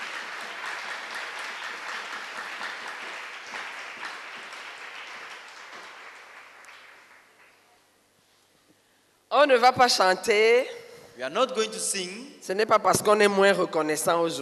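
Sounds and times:
church congregation applauding at a thanksgiving service: 0.0 - 8.0
speech: 9.4 - 14.4.

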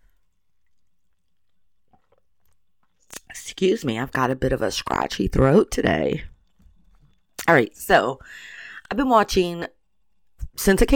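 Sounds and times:
person sipping water: 0.2 - 3.4
swallowing: 0.6 - 3.3
speech: 3.4 - 6.3, 7.5 - 9.8, 10.6 - 10.9.

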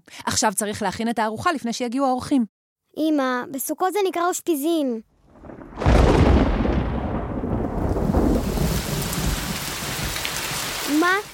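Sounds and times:
speech: 0.2 - 5.1
loud thunderclap: 5.2 - 11.3
heavy rain pouring down: 5.3 - 11.3.

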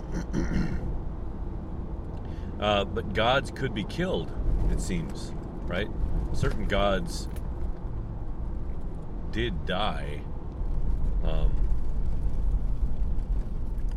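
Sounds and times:
steady low traffic rumble: 0.0 - 13.9
speech: 2.6 - 7.4, 9.3 - 10.3, 11.2 - 11.6.

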